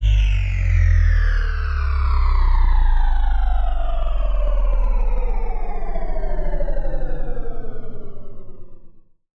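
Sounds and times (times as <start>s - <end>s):
decelerating sci-fi drone: 0.0s - 9.0s.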